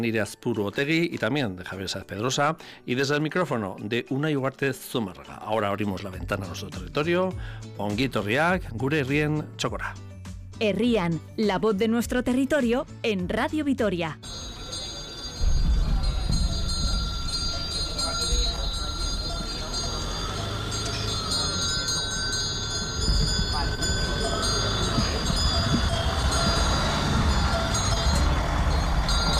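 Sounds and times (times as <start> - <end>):
speech: 0.0 - 14.5
faint murmuring voices outdoors: 14.2 - 29.3
livestock cowbells clanging: 14.2 - 29.3
steady rumble of car traffic engines: 14.2 - 29.3.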